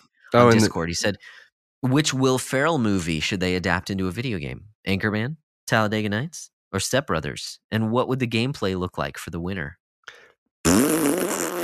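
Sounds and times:
speech: 0.3s - 11.4s
loud buzzy fart noise: 10.7s - 11.6s.

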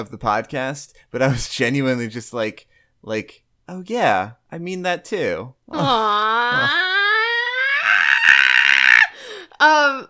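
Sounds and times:
speech: 0.0s - 7.0s, 9.6s - 10.0s
person mimicking a cartoonish video game scream: 5.7s - 10.0s
person yelping: 5.7s - 10.0s.

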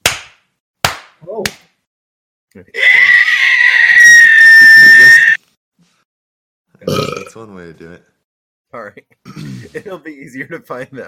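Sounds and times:
sharp slaps or smacks: 0.0s - 1.8s
speech: 1.3s - 1.6s, 2.6s - 3.0s, 7.4s - 8.1s, 8.7s - 11.0s
person screeching loudly into microphone: 2.8s - 5.4s.

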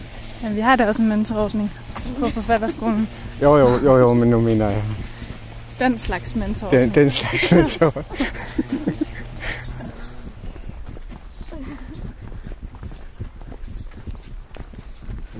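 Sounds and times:
low voices: 0.0s - 10.6s
rustling: 0.0s - 12.1s
hoof clops of horses walking on a hard surface behind a churchyard: 0.0s - 15.3s
speech: 0.4s - 5.1s, 5.8s - 9.0s
laughter: 1.8s - 4.8s, 6.6s - 10.2s, 11.5s - 12.0s.

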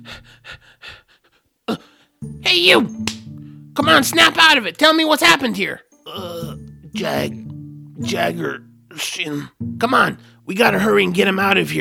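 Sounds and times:
injured man's labored ragged breathing: 0.0s - 2.2s
speech: 2.6s - 3.0s, 3.8s - 5.9s, 7.0s - 7.4s, 8.0s - 11.7s.

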